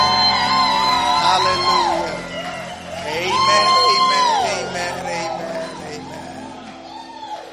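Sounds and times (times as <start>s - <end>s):
audience clapping: 0.0s - 7.2s
congregation cheering with whoops and shouts: 0.0s - 7.5s.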